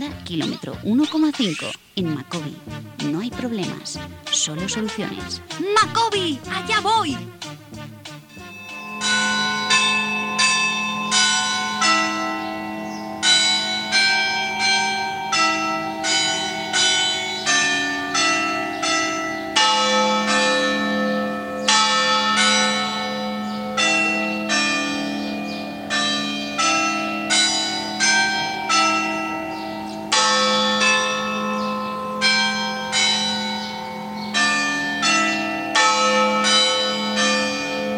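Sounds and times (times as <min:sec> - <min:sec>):
speech: 0:00.0 - 0:07.6
peal of church bells ringing: 0:08.3 - 0:37.9.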